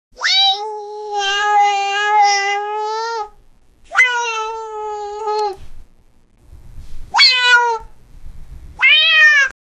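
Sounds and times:
startled cat meowing: 0.2 - 5.6, 7.1 - 7.9, 8.8 - 9.6.

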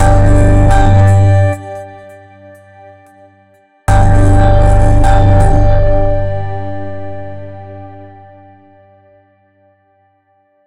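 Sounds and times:
G major scale: 0.0 - 2.4, 3.9 - 8.5.

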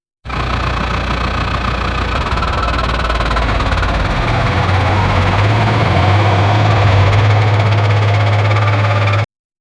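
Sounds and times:
truck starting: 0.3 - 9.3.

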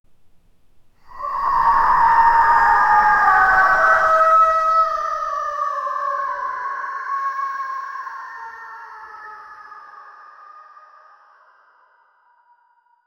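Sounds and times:
ghost crying horror sound: 1.0 - 10.2.

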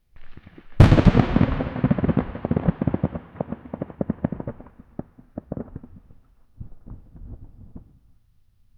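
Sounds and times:
distant echoing thunder: 0.5 - 7.2.

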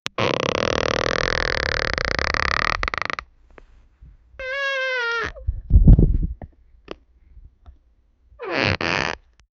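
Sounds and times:
bed creaking in a bedroom: 0.2 - 3.3, 4.4 - 5.5, 8.4 - 9.2.

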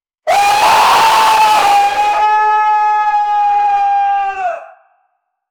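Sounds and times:
demon scream: 0.3 - 4.8.

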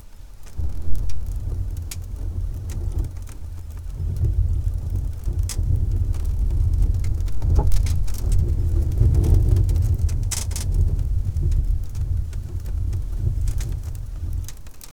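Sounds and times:
rural rustling: 0.1 - 14.9
wood creaking: 0.6 - 11.8.

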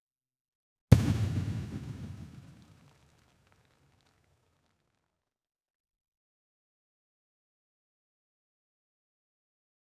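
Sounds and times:
quick comedic vine boom sound effect: 0.9 - 2.8.

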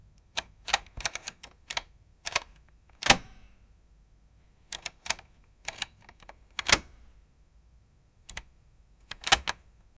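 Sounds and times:
mechanical lock unlocking: 0.4 - 3.3, 4.7 - 6.9, 9.1 - 9.6.

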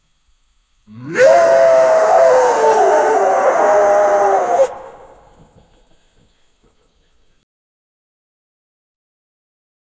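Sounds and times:
wolf howl: 0.9 - 5.4.

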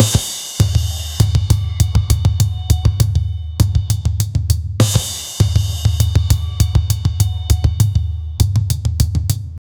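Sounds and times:
ethnic drums: 0.0 - 9.6.

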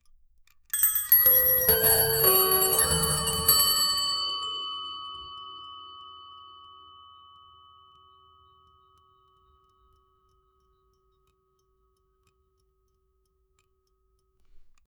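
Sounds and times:
clock chimes: 0.7 - 10.7.

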